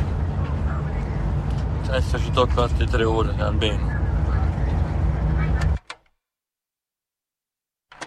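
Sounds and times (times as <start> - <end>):
faint indistinct voices: 0.0 - 5.8
minibus engine rumble and cabin noise in traffic: 0.0 - 5.9
speech: 1.9 - 4.0.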